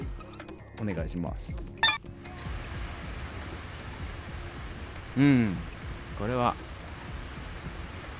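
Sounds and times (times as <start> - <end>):
speech: 0.8 - 1.8, 5.2 - 6.6
steady rain falling: 2.4 - 8.1.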